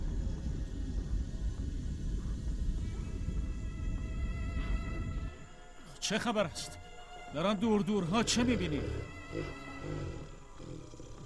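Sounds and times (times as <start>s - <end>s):
deep steady rumble of stormy wind: 0.0s - 5.8s
speech: 6.1s - 10.2s.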